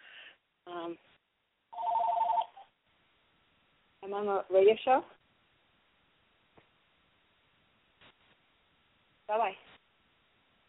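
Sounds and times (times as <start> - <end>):
telephone ringing with an incoming call: 1.8 - 2.7
speech: 4.1 - 5.2.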